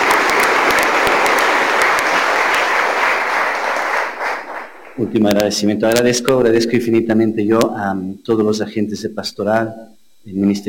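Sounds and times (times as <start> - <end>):
audience applause of many hands clapping: 0.0 - 5.4
speech: 5.0 - 10.6.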